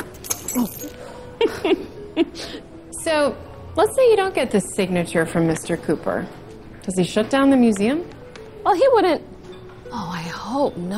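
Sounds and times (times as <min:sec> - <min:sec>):
tossed keys jingling and clinking at a restaurant: 0:00.0 - 0:01.0
speech: 0:00.6 - 0:09.3, 0:09.9 - 0:10.9.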